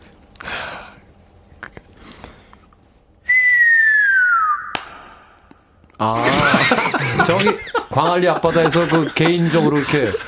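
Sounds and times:
breathy mouth sounds: 0:00.3 - 0:02.8
person imitating a whistling firework with the mouth: 0:03.3 - 0:05.1
speech: 0:06.0 - 0:06.2, 0:07.2 - 0:10.2
laughter: 0:06.1 - 0:10.2.

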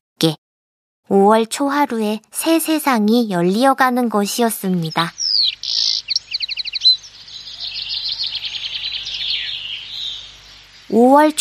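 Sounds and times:
speech: 0:00.2 - 0:00.4, 0:01.1 - 0:05.8, 0:10.9 - 0:11.3
skylark singing: 0:04.2 - 0:11.3.

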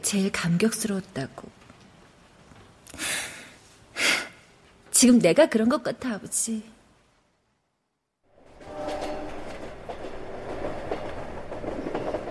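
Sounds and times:
speech: 0:00.1 - 0:01.6, 0:05.0 - 0:06.8
train rolling along rails: 0:08.3 - 0:12.2.

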